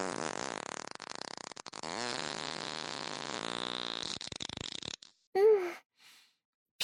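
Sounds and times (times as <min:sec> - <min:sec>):
loud drawn-out fart: 0:00.0 - 0:05.3.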